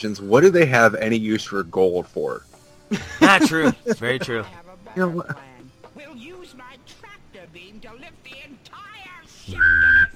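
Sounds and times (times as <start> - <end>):
speech: 0.0 - 6.6
laughter: 2.9 - 5.4
person humming and whistling in a sci-fi tractor-beam imitation: 9.5 - 10.1.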